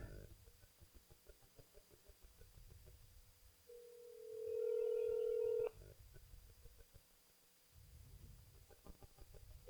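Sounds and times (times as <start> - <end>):
phone ringback tone: 3.7 - 5.7.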